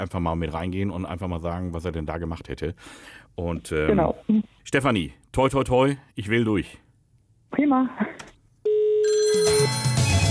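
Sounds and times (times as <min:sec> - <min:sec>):
speech: 0:00.0 - 0:06.8, 0:07.5 - 0:08.3, 0:09.0 - 0:10.2
telephone ringing with a bright electronic ring: 0:08.7 - 0:10.2.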